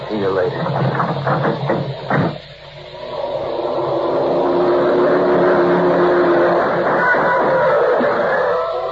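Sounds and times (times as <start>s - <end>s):
speech: 0.1s - 2.6s
sharp knocks: 0.8s - 2.4s
black twelve-cylinder sedan engine roaring as the car speeds past: 3.0s - 8.8s.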